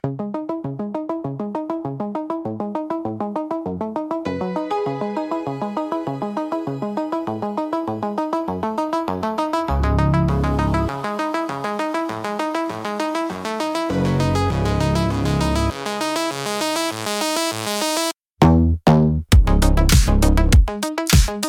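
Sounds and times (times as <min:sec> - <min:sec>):
dark synthwave music: 0:00.0 - 0:18.1, 0:19.4 - 0:21.4.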